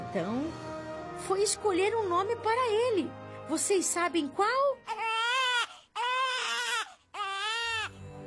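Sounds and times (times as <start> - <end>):
speech: 0.1 - 5.1
newborn baby crying: 4.8 - 8.0.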